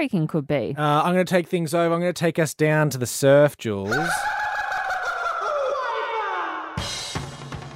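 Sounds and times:
speech: 0.0 - 4.4
chicken clucking and squawking: 3.9 - 6.0
laughter: 3.9 - 6.6.

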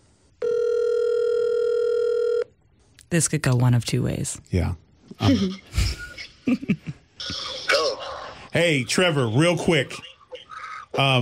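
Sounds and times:
electronic ring tone from an outgoing phone call: 0.4 - 2.6
speech: 3.1 - 5.8, 6.5 - 7.7, 8.5 - 10.1, 11.0 - 11.2.

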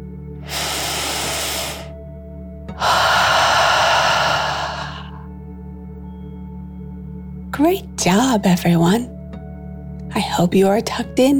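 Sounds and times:
deep breath in and out during a calming meditation for children: 0.4 - 2.0, 2.8 - 5.3
speech: 7.6 - 9.2, 10.2 - 11.3.

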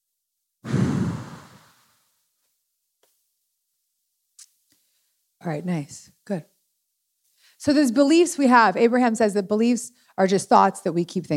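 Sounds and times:
forceful breathy exhale: 0.6 - 1.9
speech: 5.4 - 6.5, 7.6 - 11.3.

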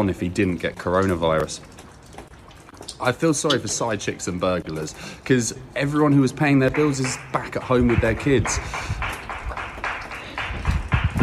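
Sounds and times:
speech: 0.0 - 1.8, 3.0 - 9.1
neighbourhood crowd clapping outdoors for health workers: 6.6 - 11.2.

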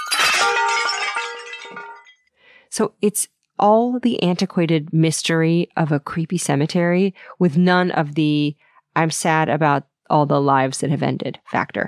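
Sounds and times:
jars or pottery smashing: 0.0 - 2.2
pottery shards ringing and clinking as they settle: 0.0 - 2.2
speech: 0.4 - 0.9, 2.7 - 11.8.

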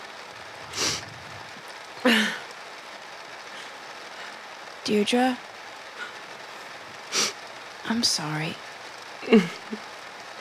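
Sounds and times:
heavy rain: 0.0 - 10.4
breathy bursts from a person: 0.7 - 1.5
speech: 2.0 - 2.4, 4.9 - 5.5, 7.9 - 8.6, 9.2 - 9.9.

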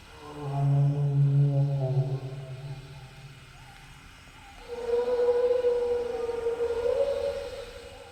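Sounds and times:
brachiosaurus bellow made from whale songs and donkey sounds: 0.1 - 2.9, 4.6 - 8.1.

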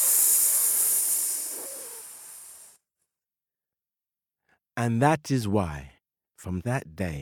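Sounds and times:
snake hissing: 0.0 - 2.8
speech: 4.8 - 7.2.

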